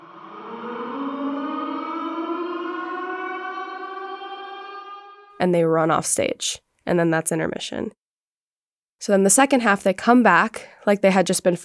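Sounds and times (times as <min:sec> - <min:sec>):
tornado siren wailing: 0:00.0 - 0:05.4
speech: 0:05.4 - 0:08.0, 0:09.0 - 0:11.6.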